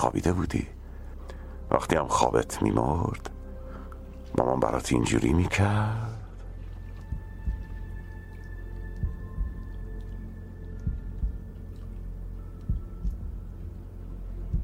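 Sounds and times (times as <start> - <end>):
speech: 0.0 - 0.8, 1.8 - 3.3, 4.3 - 6.2
steady low hum: 0.0 - 14.6
heartbeat of a baby in its mother's belly: 6.7 - 14.6.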